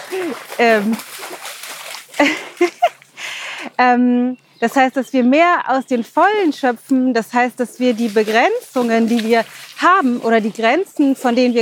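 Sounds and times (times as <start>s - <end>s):
animal jumping into water with splashing and sloshing: 0.0s - 3.0s, 7.9s - 10.0s
speech: 0.1s - 1.3s, 3.8s - 11.6s.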